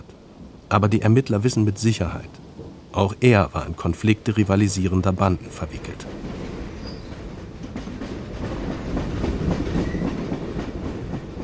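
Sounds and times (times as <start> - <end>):
train rumbling on rails on a trip to Borlänge Sweden: 0.0 - 11.4
speech: 0.7 - 6.2
train wheels clacking over track joints: 5.7 - 11.4.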